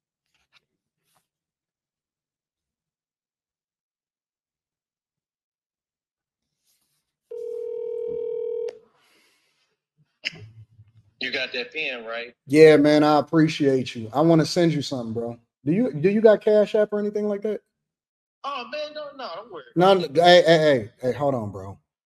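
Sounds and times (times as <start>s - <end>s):
electronic phone dial tone: 7.3s - 8.8s
speech: 11.2s - 17.7s, 18.5s - 21.8s.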